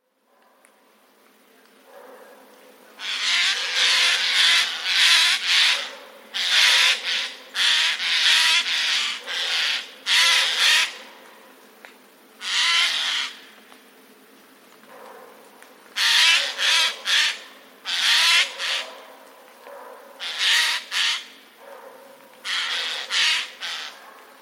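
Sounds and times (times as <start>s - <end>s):
jays screaming alarm calls in a forest: 3.0s - 11.1s, 12.4s - 13.5s, 16.0s - 19.1s, 20.2s - 21.4s, 22.4s - 24.0s.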